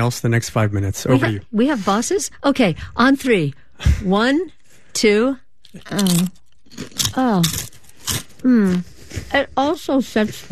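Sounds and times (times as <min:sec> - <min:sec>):
speech: 0:00.0 - 0:10.4
crunching bites into crunchy food: 0:05.7 - 0:09.3.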